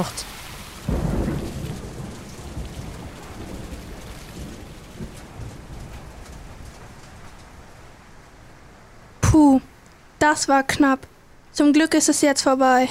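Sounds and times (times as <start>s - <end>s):
speech: 0.0s - 0.3s, 9.4s - 12.9s
steady dense heavy rain downpour: 0.0s - 12.9s
loud booming thunderclap: 0.6s - 9.2s.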